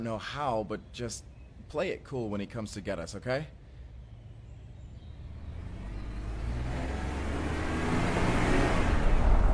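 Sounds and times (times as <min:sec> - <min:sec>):
speech: 0:00.0 - 0:03.6
car engine approaching: 0:05.0 - 0:09.5.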